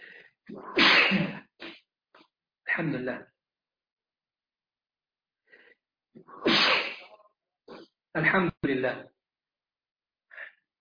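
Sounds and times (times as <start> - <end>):
person sneezing in cold rainy weather in Turkey: 0.5 - 1.8, 6.2 - 7.9
speech: 2.8 - 3.3, 8.2 - 9.1.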